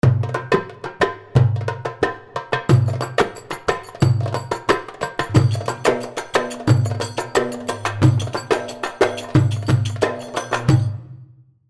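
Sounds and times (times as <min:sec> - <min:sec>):
darbuka playing wahda rhythm: 0:00.0 - 0:11.2.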